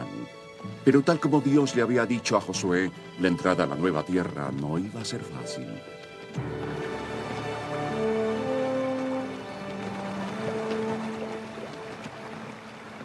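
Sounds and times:
steady rushing water: 0.0s - 13.0s
speech: 0.8s - 6.7s.

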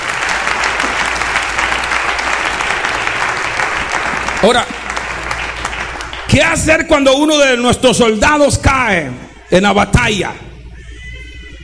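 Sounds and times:
audience applauding: 0.0s - 7.1s
speech: 4.4s - 4.8s, 6.3s - 10.4s.

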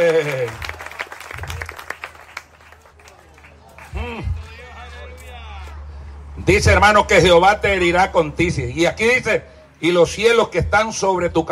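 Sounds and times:
speech: 0.0s - 0.7s, 6.4s - 11.5s
audience applause: 0.0s - 4.7s
chatter: 1.2s - 9.9s.

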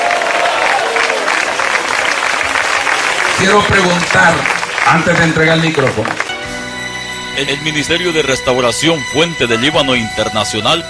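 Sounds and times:
congregation applauding: 0.0s - 6.6s
speech: 3.4s - 6.3s, 7.4s - 10.8s.

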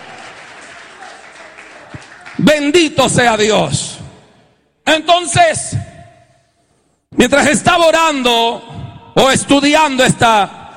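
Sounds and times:
congregation applauding in praise: 0.0s - 2.9s
speech: 2.4s - 3.8s, 4.9s - 5.9s, 7.2s - 10.6s.

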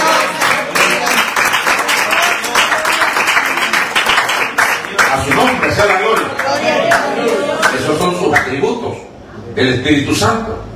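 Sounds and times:
church audience applauding during a sermon: 0.0s - 8.6s
speech: 9.6s - 10.7s.

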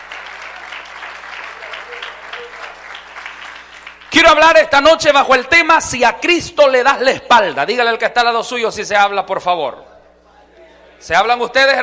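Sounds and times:
audience applause: 0.0s - 4.1s
speech: 4.3s - 9.9s, 11.0s - 11.8s.

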